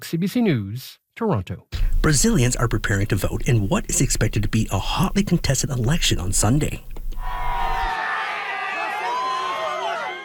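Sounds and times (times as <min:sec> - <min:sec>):
speech: 0:00.0 - 0:07.0
people whooping: 0:07.6 - 0:10.2
crowd cheering and shouting at a political rally: 0:07.8 - 0:10.2.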